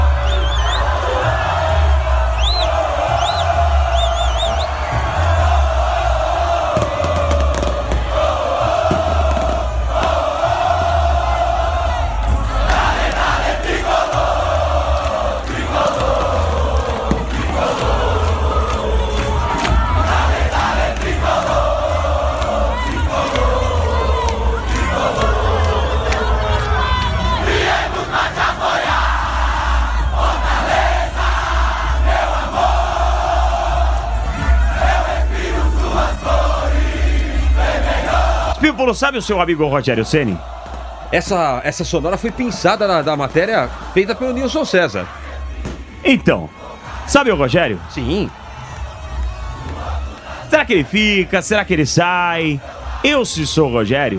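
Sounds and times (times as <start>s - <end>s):
football supporters chanting in stadium: 0.0s - 54.1s
low drum-like thumps: 6.7s - 11.2s, 14.2s - 18.6s
speech: 38.9s - 40.5s, 41.1s - 45.2s, 46.1s - 48.4s, 50.7s - 54.1s.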